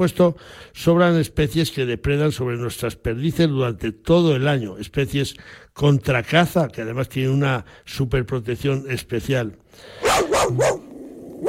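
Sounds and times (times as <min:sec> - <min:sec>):
speech: 0:00.0 - 0:10.8
dog barking: 0:10.0 - 0:10.8.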